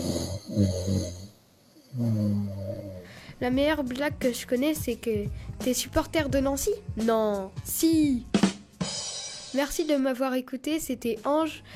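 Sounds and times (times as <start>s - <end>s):
person imitating a mother's loud rasping snoring: 0.0s - 3.4s
speech: 0.6s - 1.2s, 1.9s - 11.7s.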